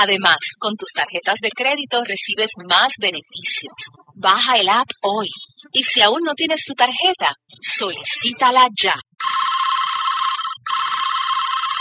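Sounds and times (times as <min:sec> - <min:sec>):
speech: 0:00.0 - 0:09.5
telephone ringing unanswered with electronic trill: 0:09.2 - 0:11.7.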